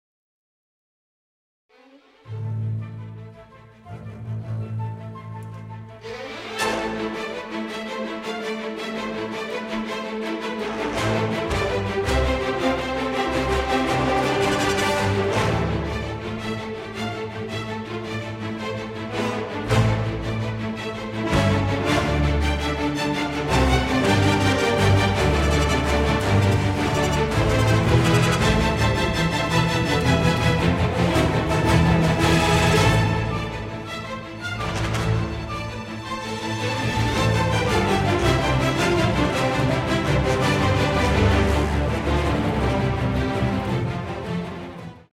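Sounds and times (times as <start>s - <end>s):
orchestral piece in D minor: 1.7s - 45.1s.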